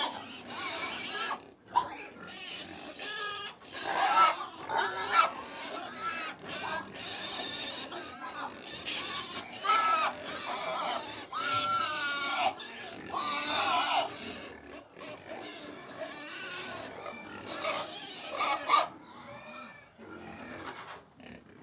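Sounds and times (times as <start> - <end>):
about 100 pigs squealing and grunting while feeding: 0.0 - 21.6.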